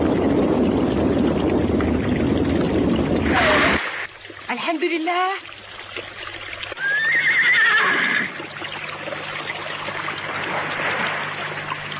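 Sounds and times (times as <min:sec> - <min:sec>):
rushing water or wind: 0:00.0 - 0:11.9
speech: 0:04.7 - 0:06.1
horse whinnying: 0:06.8 - 0:08.4.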